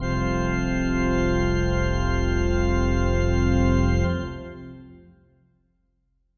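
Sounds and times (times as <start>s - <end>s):
heavy pipe organ synth keys: 0.0s - 5.1s.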